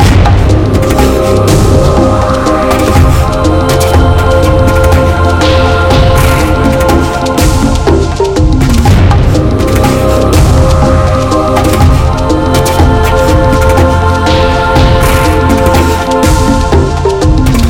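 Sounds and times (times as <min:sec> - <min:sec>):
big win jingle loop: 0:00.0 - 0:17.6.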